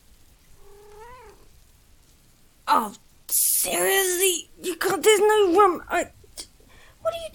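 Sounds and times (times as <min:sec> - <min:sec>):
domestic cat meowing: 0:00.6 - 0:01.5
speech: 0:02.8 - 0:06.2.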